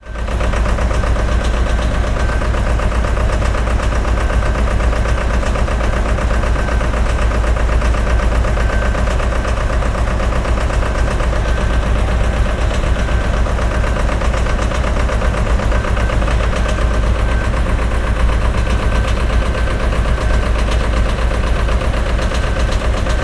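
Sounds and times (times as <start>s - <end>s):
rhythmic truck noise: 0.1s - 23.2s.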